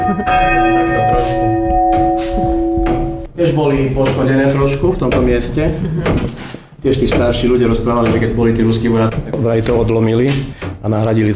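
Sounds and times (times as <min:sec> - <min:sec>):
large church bell ringing: 0:00.0 - 0:03.9
speech: 0:00.1 - 0:01.1, 0:03.4 - 0:11.3.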